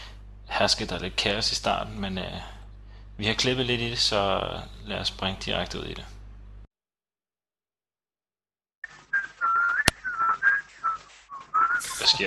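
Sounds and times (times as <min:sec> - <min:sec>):
speech: 0:00.6 - 0:02.6, 0:03.2 - 0:06.2, 0:12.0 - 0:12.2
person whistling a tune: 0:09.1 - 0:12.2.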